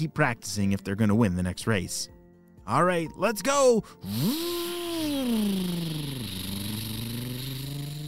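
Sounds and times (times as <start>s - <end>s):
speech: 0.0s - 6.0s
dirt bike engines revving as riders take off: 4.1s - 8.0s.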